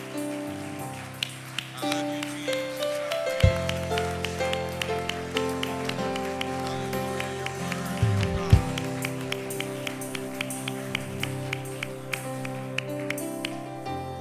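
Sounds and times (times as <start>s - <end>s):
audience clapping hands in a steady rhythm: 0.0s - 14.0s
music: 0.0s - 14.1s.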